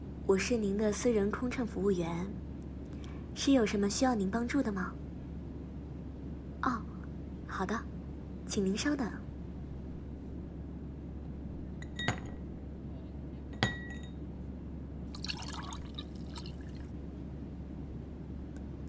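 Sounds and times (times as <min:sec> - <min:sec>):
steady low cabin-like hum: 0:00.0 - 0:18.8
speech: 0:00.3 - 0:02.4, 0:03.4 - 0:05.0, 0:06.6 - 0:06.8, 0:07.6 - 0:07.9, 0:08.5 - 0:09.2
fizzing crackle: 0:15.1 - 0:16.9
ice cubes dropped into a glass clinking: 0:15.2 - 0:16.6.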